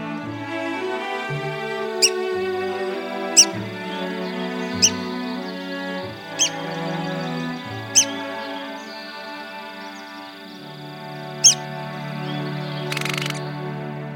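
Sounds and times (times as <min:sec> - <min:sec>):
slow sustained violin melody: 0:00.0 - 0:14.1
red-cockaded woodpecker calls: 0:01.9 - 0:13.5.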